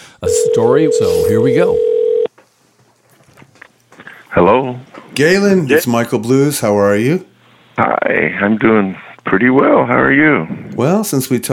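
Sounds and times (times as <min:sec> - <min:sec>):
speech: 0:00.2 - 0:02.0, 0:04.4 - 0:11.5
loud telephone keypad tone: 0:00.3 - 0:02.3.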